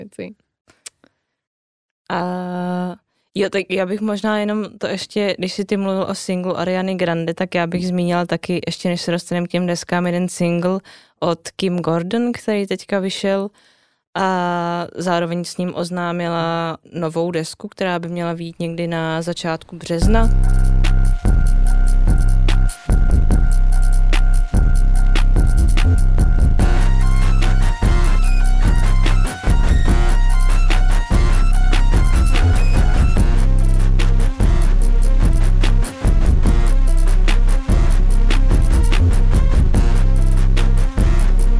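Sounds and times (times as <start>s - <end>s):
speech: 0.0s - 0.5s, 2.1s - 20.9s
buzzing textures: 20.0s - 41.5s
experimental music track with droning low end and jittery beat: 20.0s - 41.5s.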